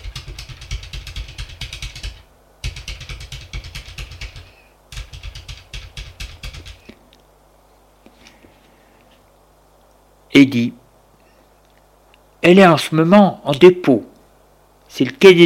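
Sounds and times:
fingers typing rapidly on a computer keyboard: 0.0 - 7.0
speech: 10.4 - 10.8, 12.4 - 14.1, 15.0 - 15.4.

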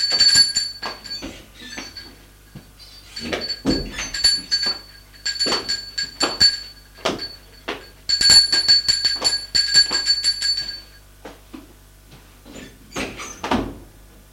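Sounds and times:
doorbell ringing with a bright rapid metallic trill: 0.0 - 2.2, 3.0 - 11.0.

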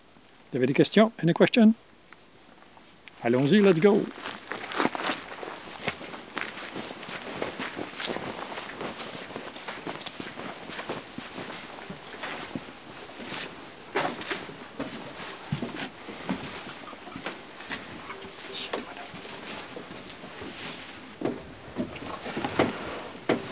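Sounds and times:
speech: 0.5 - 1.9, 3.2 - 4.3
several people walking in single file on a forest trail: 2.2 - 23.5.

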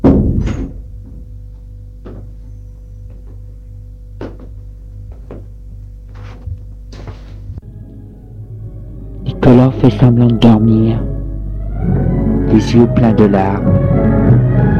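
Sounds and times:
door swinging shut with a solid thud: 0.0 - 1.3
low steady hum: 0.0 - 14.7
speech: 9.6 - 11.1, 12.5 - 14.4.

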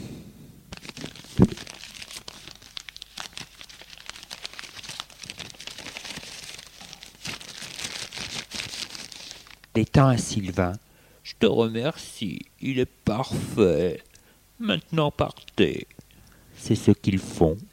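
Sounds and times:
banknotes and envelope paper rustling: 0.7 - 9.7
paper envelope tearing open: 0.7 - 9.7
speech: 9.8 - 16.0, 16.6 - 17.7.

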